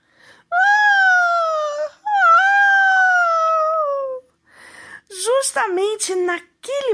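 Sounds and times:
girl gasping: 0.0s - 0.5s, 4.4s - 5.1s
girl crying loudly in drawn-out wails: 0.5s - 4.2s
speech: 6.0s - 6.5s.

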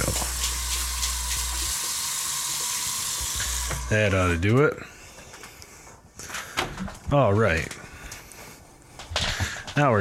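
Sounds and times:
warm water running from a tap into a tank: 0.0s - 4.4s
speech: 3.9s - 4.9s, 7.1s - 7.8s, 9.8s - 9.9s.

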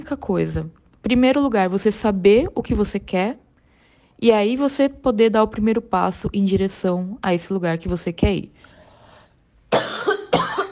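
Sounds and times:
speech: 0.0s - 3.4s, 4.2s - 8.7s
person with a cold coughing harshly: 9.7s - 10.7s.

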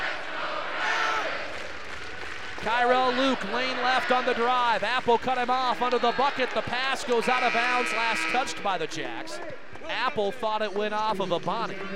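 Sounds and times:
large indoor basketball arena crowd roaring: 0.0s - 1.8s, 2.5s - 10.1s
speech: 2.6s - 11.9s.

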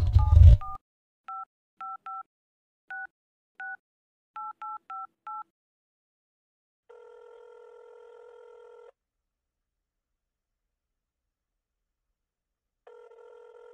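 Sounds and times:
telephone number dialed on touch-tone keys: 0.2s - 2.3s, 2.9s - 3.8s, 4.4s - 5.5s.

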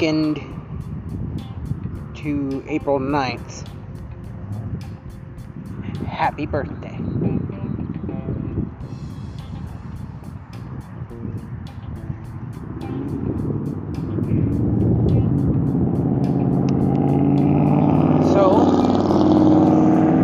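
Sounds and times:
speech: 0.0s - 1.5s, 2.2s - 3.7s, 6.0s - 7.4s
rapid rhythmic ticking overhead: 0.0s - 6.1s, 8.8s - 18.0s
trucks passing by: 0.0s - 7.6s, 8.6s - 20.2s
heavy road traffic rumbling: 0.0s - 20.2s.

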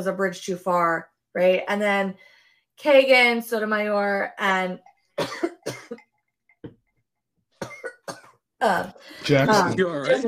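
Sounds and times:
speech: 0.0s - 6.1s, 8.6s - 10.2s
person coughing: 5.2s - 6.0s, 7.6s - 8.4s.

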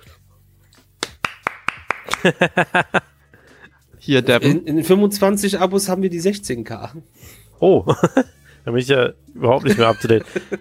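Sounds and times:
crisp hand claps: 0.7s - 2.4s
laughter: 2.0s - 3.6s, 7.9s - 8.5s, 9.6s - 10.5s
speech: 2.2s - 3.1s, 4.0s - 10.5s.

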